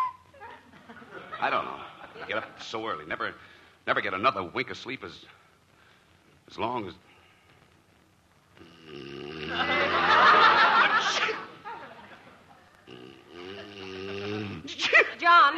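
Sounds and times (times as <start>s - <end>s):
laughter: 0.4s - 2.7s, 9.5s - 12.7s
speech: 1.4s - 5.4s, 6.5s - 7.1s
person sneezing: 11.0s - 11.5s.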